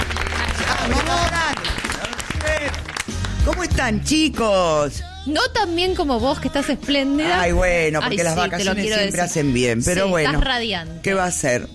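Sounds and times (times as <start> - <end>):
studio audience applause: 0.0 - 3.7
speech: 3.7 - 11.7.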